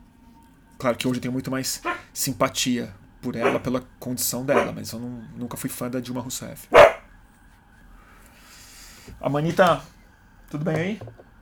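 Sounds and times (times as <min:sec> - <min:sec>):
faint hiss: 0:00.0 - 0:11.4
speech: 0:00.8 - 0:06.9, 0:09.2 - 0:11.2
dog barking: 0:01.8 - 0:02.2, 0:03.4 - 0:03.8, 0:04.4 - 0:04.9, 0:06.7 - 0:07.1.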